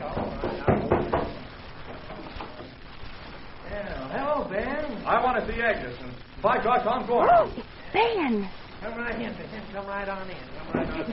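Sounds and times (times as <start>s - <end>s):
low murmur: 0.0s - 11.1s
fist pounding on a door: 0.2s - 1.4s
speech: 5.4s - 11.1s.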